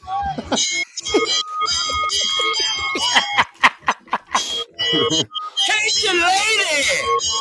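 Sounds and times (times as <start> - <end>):
people laughing: 0.0 - 5.3
speech: 0.4 - 0.9
loud bell ringing: 0.5 - 7.3.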